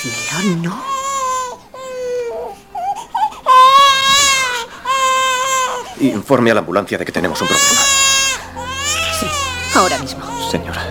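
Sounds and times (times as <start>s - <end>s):
speech: 0.0s - 0.9s, 6.0s - 8.0s, 9.8s - 10.9s
newborn baby crying: 0.0s - 6.0s, 7.2s - 10.9s.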